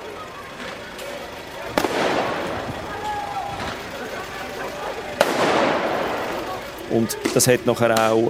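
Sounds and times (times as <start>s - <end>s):
laughter: 0.0s - 7.9s
crowd roar during a street riot: 0.0s - 8.2s
shouting: 0.0s - 8.2s
firecracker bangs during a street riot: 1.7s - 3.8s, 5.2s - 6.6s
speech: 6.9s - 8.2s.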